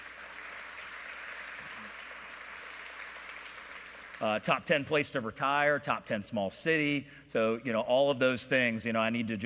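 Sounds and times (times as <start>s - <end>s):
theater audience applause: 0.0s - 4.4s
speech: 4.2s - 9.4s.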